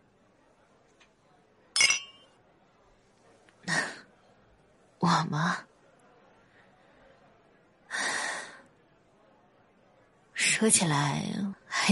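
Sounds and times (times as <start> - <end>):
glasses clinking in a toast: 1.8 - 2.4
speech: 5.0 - 5.7, 10.6 - 11.9.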